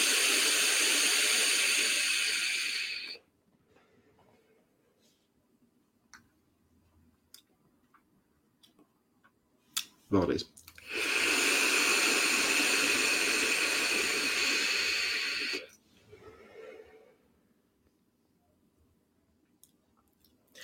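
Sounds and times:
breathy exhale of e-cigarette vapor: 0:00.0 - 0:03.2, 0:10.9 - 0:17.2
person drawing hard on an e-cigarette with a 0.2 coil: 0:00.0 - 0:03.2, 0:10.8 - 0:15.7
speech: 0:10.1 - 0:10.6.

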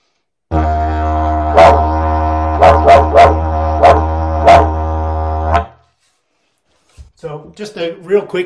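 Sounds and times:
low didgeridoo drone: 0:00.5 - 0:05.7
speech: 0:07.7 - 0:08.4.

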